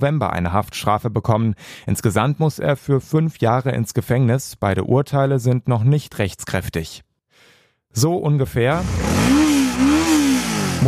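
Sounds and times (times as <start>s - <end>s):
speech: 0.0s - 7.1s, 7.9s - 9.4s
motorcycle engine revving and accelerating: 8.7s - 10.8s.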